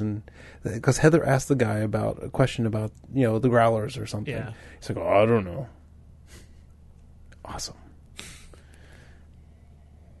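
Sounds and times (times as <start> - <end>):
speech: 0.2 - 6.4, 7.5 - 7.8
person sniffing a glass of sour beer: 6.3 - 6.7, 8.2 - 9.2.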